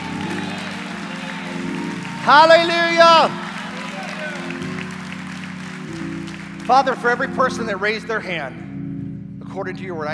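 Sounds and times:
crowd applauding: 0.0s - 8.0s
speech: 2.3s - 3.4s, 6.7s - 8.6s, 9.5s - 10.1s.

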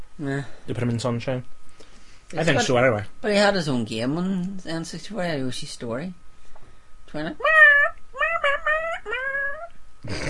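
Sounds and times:
speech: 0.2s - 1.6s, 2.3s - 6.2s, 7.1s - 7.6s
cat-like yowling meow: 7.4s - 9.7s.

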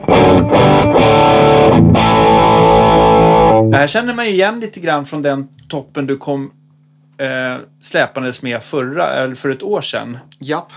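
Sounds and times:
crunchy overdriven electric guitar chords through amp preamp distortion: 0.0s - 3.9s
speech: 3.8s - 6.6s, 7.2s - 10.7s.

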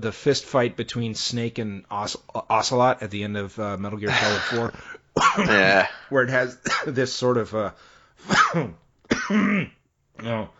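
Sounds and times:
speech: 0.0s - 10.5s
person coughing: 4.1s - 7.0s, 8.2s - 9.8s.

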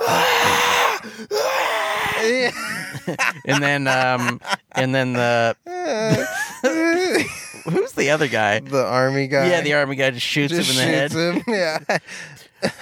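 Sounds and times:
person imitating agonized screaming of a burned man: 0.0s - 2.9s, 5.6s - 7.3s
harsh raspy breaths: 0.0s - 3.0s, 12.0s - 12.6s
laughter: 2.2s - 8.6s, 10.6s - 12.8s
speech: 2.2s - 12.8s.

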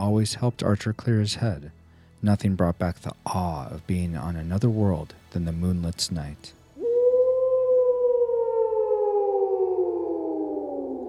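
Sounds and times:
speech: 0.0s - 6.6s
long mournful howl echoing across a plain on a moonlit night: 6.8s - 11.0s.

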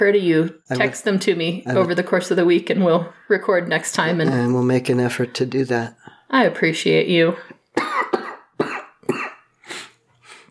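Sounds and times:
speech: 0.0s - 7.9s
person coughing harshly: 7.8s - 9.9s.

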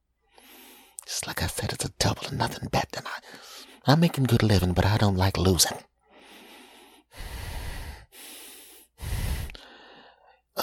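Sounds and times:
heavy breathing from a doctor with nose touching a patient's nose: 0.3s - 1.0s, 3.2s - 3.8s, 6.0s - 10.5s
speech: 1.2s - 5.9s.

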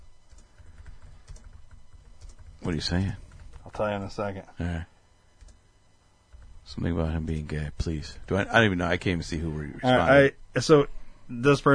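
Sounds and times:
typing on a computer keyboard: 0.3s - 3.8s
speech: 2.6s - 3.2s, 3.8s - 4.9s, 6.7s - 11.7s.

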